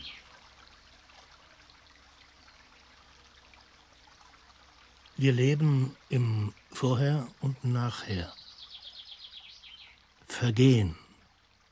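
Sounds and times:
stream water trickling: 0:00.0 - 0:11.6
speech: 0:05.2 - 0:08.4, 0:10.4 - 0:11.0.

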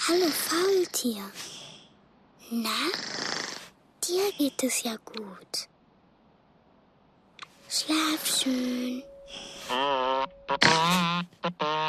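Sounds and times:
speech: 0:00.1 - 0:01.6, 0:02.5 - 0:03.2, 0:04.1 - 0:05.7, 0:07.7 - 0:11.8
loud brassy elephant trumpeting: 0:09.4 - 0:11.8.

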